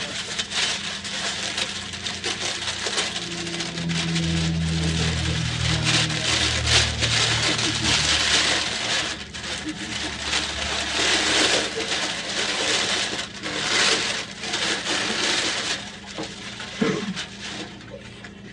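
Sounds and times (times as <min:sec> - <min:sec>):
paper being ripped and torn: 0:00.1 - 0:17.7
low hum: 0:00.5 - 0:13.3.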